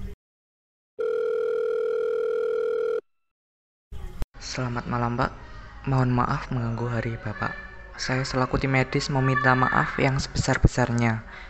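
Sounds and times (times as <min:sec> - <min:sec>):
telephone dial tone as a doctor places a call: 0:01.0 - 0:03.0
speech: 0:04.5 - 0:11.4.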